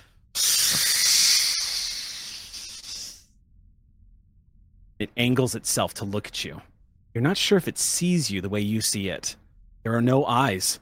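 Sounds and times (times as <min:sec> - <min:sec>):
long loud hissing breath: 0:00.0 - 0:03.3
speech: 0:05.0 - 0:10.7.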